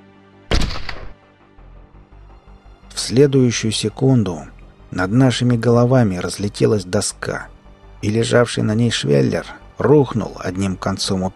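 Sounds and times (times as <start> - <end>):
SVU sniper rifle gunshot: 0.5 - 1.2
speech: 3.1 - 11.3.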